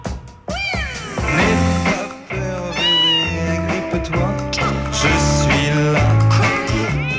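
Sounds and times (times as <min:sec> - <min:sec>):
female cat meowing: 0:00.5 - 0:05.4, 0:06.4 - 0:07.1.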